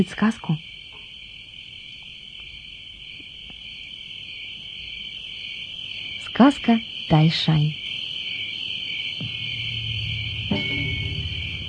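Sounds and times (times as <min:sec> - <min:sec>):
speech: 0:00.0 - 0:00.7, 0:06.4 - 0:07.8
cicadas buzzing: 0:00.0 - 0:11.6
faint low rumble: 0:09.2 - 0:11.6.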